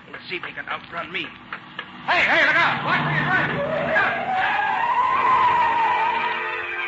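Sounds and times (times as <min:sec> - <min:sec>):
car engine rumbling: 0:00.0 - 0:06.2
speech: 0:00.3 - 0:04.6
car skidding hard on a street with tires squealing: 0:02.1 - 0:06.7.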